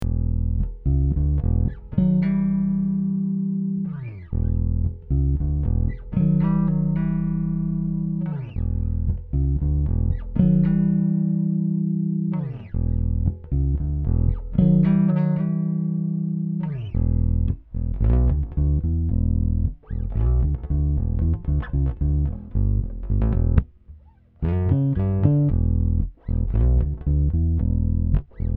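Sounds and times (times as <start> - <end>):
four string fretless semi hollow bass guitar: 0.0 - 28.5.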